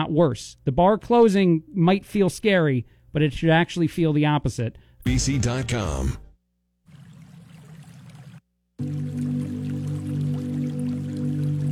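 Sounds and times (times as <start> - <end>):
speech: 0.0 - 6.2
steady rushing water: 6.9 - 11.6.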